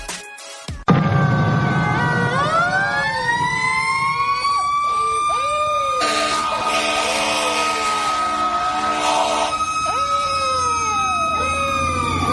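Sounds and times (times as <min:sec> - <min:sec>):
fire truck siren wailing: 0:00.9 - 0:12.3
fire truck blaring horn: 0:05.9 - 0:09.9.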